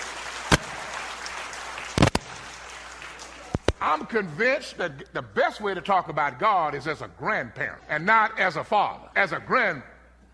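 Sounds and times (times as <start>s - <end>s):
audience hand claps: 0.0s - 3.8s
quiet room hiss: 0.0s - 10.3s
speech: 3.8s - 9.9s.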